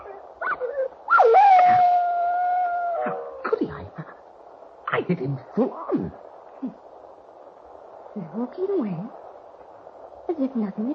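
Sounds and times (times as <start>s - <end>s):
dog howling: 0.0s - 3.5s
speech: 5.1s - 6.8s, 8.2s - 9.2s, 10.4s - 10.9s.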